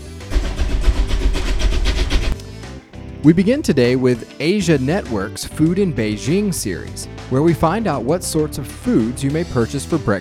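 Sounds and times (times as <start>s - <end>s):
steam locomotive coming off a turntable chugging: 0.1s - 2.4s
speech: 3.2s - 10.1s.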